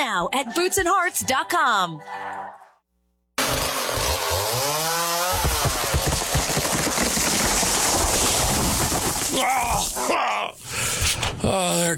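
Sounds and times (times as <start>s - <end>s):
speech: 0.0s - 2.6s, 9.4s - 10.8s, 11.4s - 11.9s
chainsaw cutting a tree: 3.4s - 9.4s
groan-like sound: 9.3s - 10.6s.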